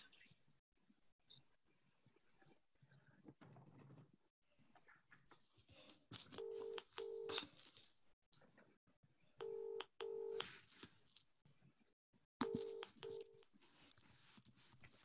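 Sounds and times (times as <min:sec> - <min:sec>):
telephone keypad tones: 0:06.3 - 0:07.5, 0:09.4 - 0:10.5, 0:12.4 - 0:13.4.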